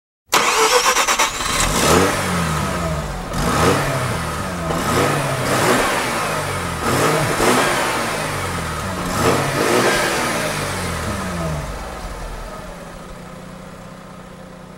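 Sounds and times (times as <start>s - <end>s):
Mazda RX7 FD3S car engine: 0.3s - 14.7s.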